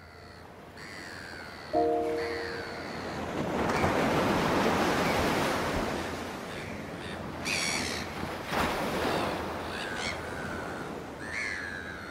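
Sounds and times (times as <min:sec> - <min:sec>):
crows cawing: 0:00.2 - 0:01.7, 0:09.7 - 0:12.0
ocean waves rushing onto the shore: 0:01.8 - 0:12.0.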